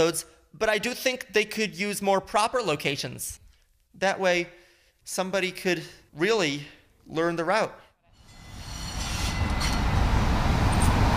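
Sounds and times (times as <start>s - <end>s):
speech: 0.0s - 7.8s
faint metallic squeaks of a subway train: 8.1s - 11.0s
subway train rumbling on rails in Boston: 8.7s - 11.1s.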